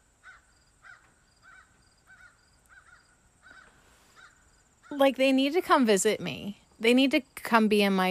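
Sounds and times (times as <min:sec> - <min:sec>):
crows cawing: 0:00.2 - 0:04.9
speech: 0:05.0 - 0:08.1.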